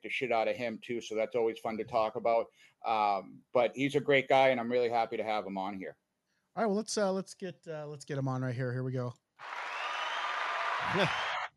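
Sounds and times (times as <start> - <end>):
speech: 0.0 - 6.0, 6.6 - 9.7, 10.8 - 11.3
crowd applause: 9.4 - 11.5
person whooping: 10.8 - 11.5.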